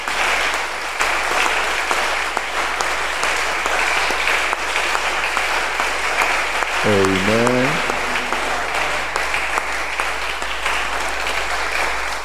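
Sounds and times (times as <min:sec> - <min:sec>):
audience clapping: 0:00.0 - 0:12.2
person calling out: 0:06.8 - 0:08.0
speech: 0:06.9 - 0:07.6.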